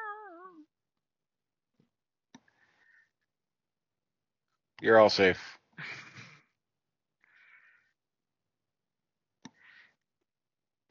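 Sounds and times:
cat meowing: 0.0 - 0.6
speech: 4.8 - 6.0.

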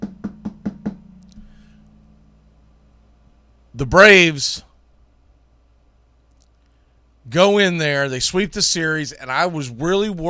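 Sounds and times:
knocks on a wooden surface: 0.0 - 1.0
speech: 3.8 - 4.7, 7.3 - 10.2.

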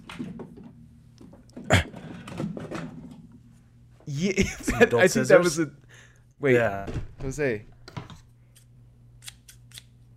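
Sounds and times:
speech: 4.1 - 5.8, 6.4 - 7.7
pair of scissors snipping and clicking: 8.6 - 9.9.

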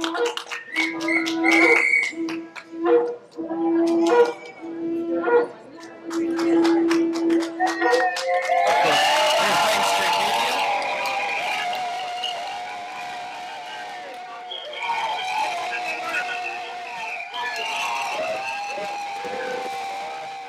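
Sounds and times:
sharp taps and claps: 0.0 - 3.4, 5.8 - 9.4
busy murmur of voices: 0.0 - 20.4
crowd outdoors blowing whistles outside a courthouse: 0.0 - 20.4.

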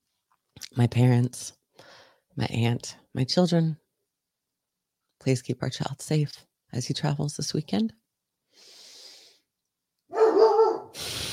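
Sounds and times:
speech: 0.8 - 3.8, 5.2 - 8.0
dog barking: 10.1 - 11.0.

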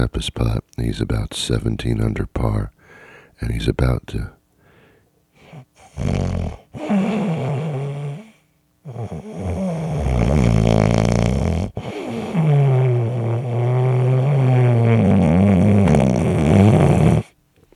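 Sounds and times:
speech: 0.0 - 2.8, 3.4 - 4.4, 6.0 - 7.6, 8.8 - 9.6
loud rumbling raspy snoring: 5.8 - 17.4.

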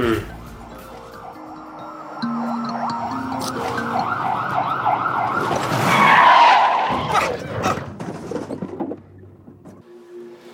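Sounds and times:
ambulance siren wailing: 1.2 - 7.2
tires screeching: 4.1 - 9.3.

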